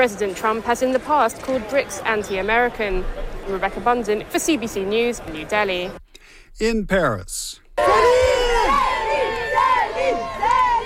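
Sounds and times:
speech: 0.0s - 6.0s, 6.6s - 8.9s
crowd of fans cheering outside a hotel in Paris France: 7.8s - 10.8s.

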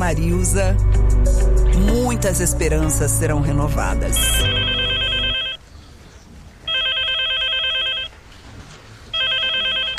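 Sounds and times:
speech: 0.1s - 4.7s
telephone ringing with electronic ring bursts: 4.2s - 5.6s, 6.7s - 8.2s, 9.1s - 9.9s.

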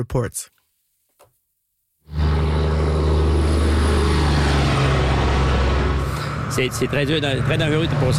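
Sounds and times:
cars speeding past on a highway: 2.1s - 8.1s.

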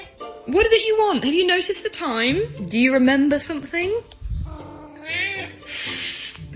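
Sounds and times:
speech: 0.5s - 4.2s
male house cat meowing for dinner: 4.4s - 5.6s.

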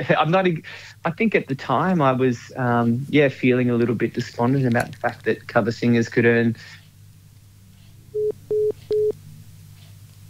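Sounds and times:
speech: 0.0s - 6.8s
low hum: 0.0s - 10.2s
phone line beeps as a call drops out: 8.2s - 9.2s.

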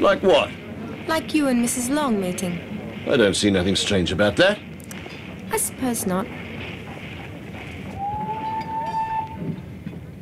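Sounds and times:
speech: 0.0s - 4.7s, 5.5s - 6.4s
train starting up and rumbling on the rails: 0.0s - 10.2s
long thin whistling squeal of a train: 8.0s - 9.6s.

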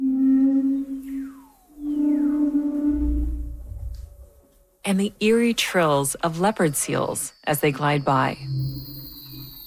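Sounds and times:
humpback whale call in frigid Antarctic waters: 0.0s - 4.2s
speech: 4.8s - 8.6s.

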